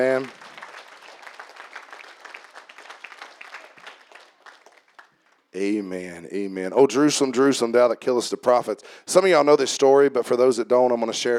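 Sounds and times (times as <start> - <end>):
speech: 0.0 - 0.4, 5.6 - 11.3
crowd applauding for mothers: 0.0 - 5.5.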